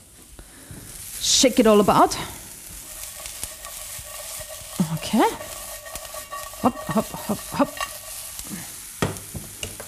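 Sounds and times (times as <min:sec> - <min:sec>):
raw cane sugar sizzling and caramelizing in a hot frying pan: 0:00.0 - 0:09.8
speech: 0:01.2 - 0:02.4, 0:05.1 - 0:05.5, 0:06.6 - 0:07.9
utensil scraping and clinking while stirring: 0:02.8 - 0:08.7.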